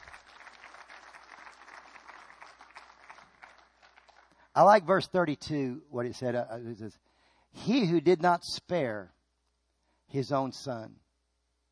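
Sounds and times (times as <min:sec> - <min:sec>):
audience clapping: 0:00.0 - 0:04.7
speech: 0:04.6 - 0:09.2, 0:10.1 - 0:11.0.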